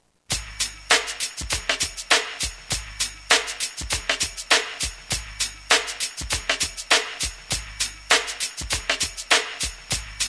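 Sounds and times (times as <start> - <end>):
lo-fi music from a Roland M-DC1 sound module: 0.3 - 10.2.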